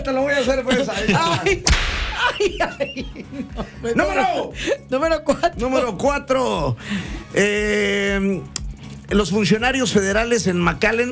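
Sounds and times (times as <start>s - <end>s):
laughter: 0.0s - 5.9s
speech: 0.0s - 11.1s
whip crack: 1.6s - 2.7s.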